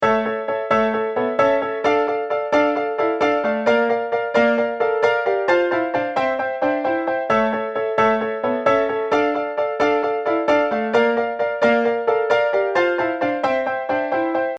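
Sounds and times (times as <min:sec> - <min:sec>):
piano riff: 0:00.0 - 0:14.5.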